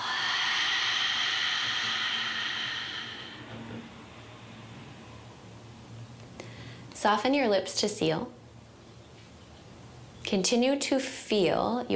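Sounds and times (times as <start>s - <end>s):
deep exhale through an open mouth during a guided breathing exercise: 0.0s - 4.9s
speech: 7.0s - 8.4s, 10.3s - 11.9s.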